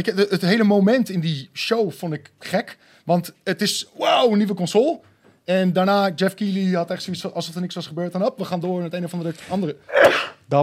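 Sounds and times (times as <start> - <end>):
speech: 0.0 - 10.6
person sneezing: 9.9 - 10.4.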